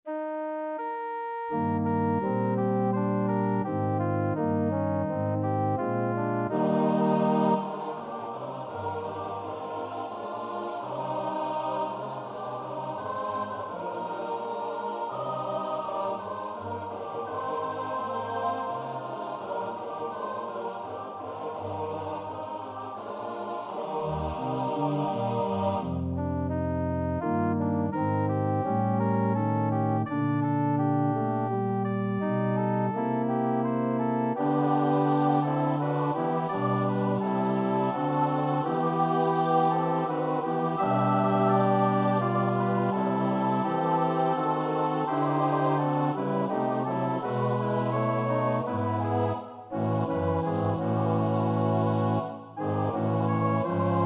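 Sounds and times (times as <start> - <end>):
SATB choir singing part practice: 0.8 - 54.0.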